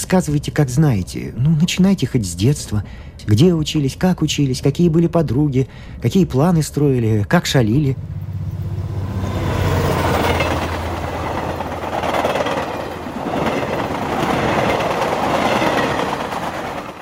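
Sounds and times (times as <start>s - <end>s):
train roaring across a railway bridge: 0.0s - 16.9s
speech: 0.1s - 8.2s
train wheels clattering: 9.2s - 16.9s.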